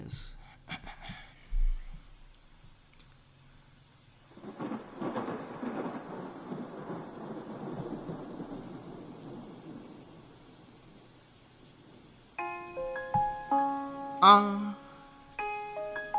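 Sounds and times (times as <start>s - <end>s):
steady hissing rainfall outside: 1.4s - 16.1s
deep rumble of thunder: 4.3s - 12.2s
speech: 14.2s - 14.7s.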